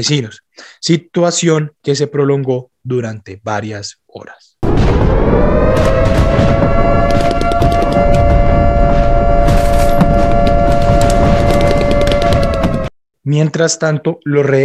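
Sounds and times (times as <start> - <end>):
speech: 0.0 - 6.6, 13.2 - 14.6
rapid bursts of gunfire: 4.6 - 8.1
heavy booming explosions: 4.6 - 12.9
loud steady droning wail: 4.6 - 12.9.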